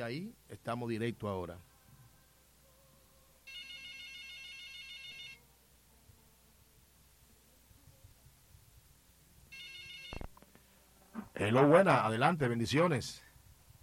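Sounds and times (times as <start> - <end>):
speech: 0.1 - 1.7, 11.4 - 13.2
WhatsApp incoming call ringtone electronic trill: 3.5 - 5.4, 9.5 - 10.2.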